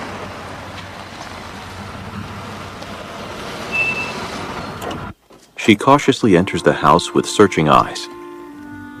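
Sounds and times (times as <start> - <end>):
car engine low rumble pulling into a driveway: 0.0 - 5.6
speech: 5.6 - 8.2.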